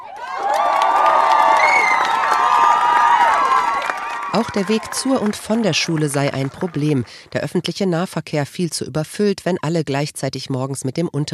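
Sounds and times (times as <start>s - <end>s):
crowd of demonstrators cheering and applauding on the Römer square in Frankfurt: 0.0s - 7.4s
speech: 4.4s - 11.3s.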